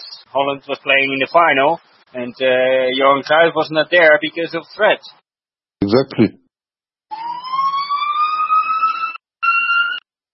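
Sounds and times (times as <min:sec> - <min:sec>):
speech: 0:00.3 - 0:05.2, 0:05.9 - 0:06.4
emergency siren wailing: 0:07.1 - 0:10.0.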